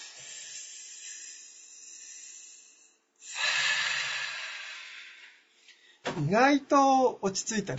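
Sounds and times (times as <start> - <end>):
deep breath during a calming pause: 0.0 - 6.1
speech: 6.2 - 7.7.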